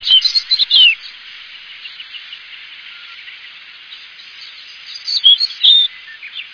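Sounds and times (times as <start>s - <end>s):
bird chirping and whistling in Higashiosaka, Japan: 0.0s - 1.1s, 4.9s - 6.5s
quiet hiss: 0.0s - 6.5s.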